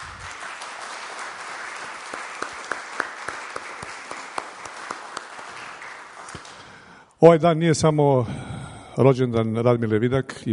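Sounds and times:
audience applause at an award ceremony in Belgrade: 0.0s - 6.8s
speech: 7.2s - 10.5s.

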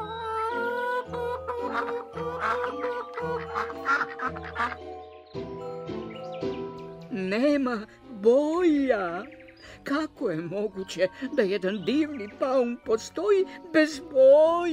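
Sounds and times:
sustained musical tones: 0.0s - 7.1s
chickens clucking: 0.3s - 4.9s
geese and ducks quacking: 0.9s - 4.9s
speech: 1.8s - 3.0s, 3.6s - 5.8s, 7.3s - 14.7s.

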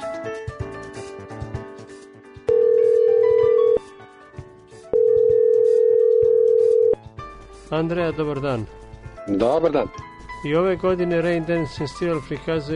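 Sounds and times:
soft music: 0.0s - 12.7s
telephone ringing tone of a call: 2.5s - 3.9s, 4.9s - 7.0s
speech: 7.7s - 12.7s.

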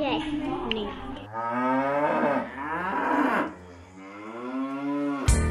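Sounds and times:
speech: 0.2s - 2.6s
cow mooing: 1.3s - 5.4s.

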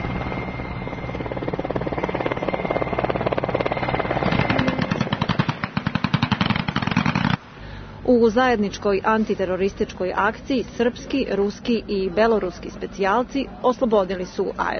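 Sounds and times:
military helicopter rotor chopping while landing troops at an airfield: 0.0s - 7.4s
speech: 8.1s - 14.7s.

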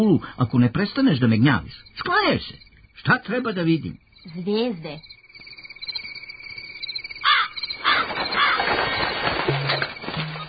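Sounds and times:
speech: 0.0s - 5.2s
thin insect-like chirring: 0.0s - 10.4s
magpie calling: 7.1s - 8.6s.

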